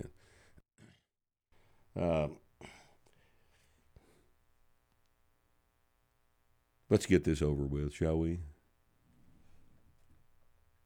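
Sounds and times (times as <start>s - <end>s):
raspy throat clearing: 0.8s - 1.1s
speech: 2.0s - 2.4s, 6.9s - 8.5s.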